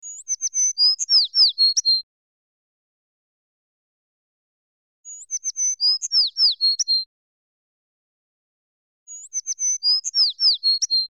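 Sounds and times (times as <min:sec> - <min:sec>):
sparrow: 0:00.0 - 0:02.1, 0:05.1 - 0:07.1, 0:09.1 - 0:11.1.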